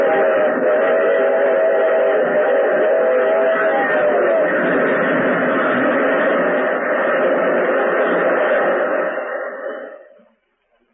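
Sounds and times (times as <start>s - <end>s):
locomotive whistle blast: 0.0s - 4.9s
locomotive train rumbling past: 0.0s - 10.9s.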